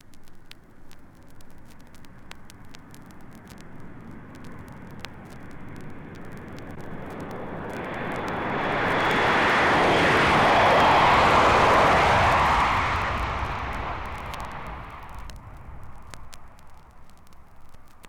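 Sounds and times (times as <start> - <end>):
707 jet taking off: 5.4 - 16.8.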